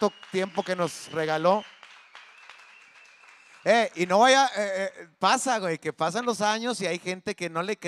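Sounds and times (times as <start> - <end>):
speech: 0.0 - 1.8, 3.6 - 7.8
soft applause: 0.0 - 4.8.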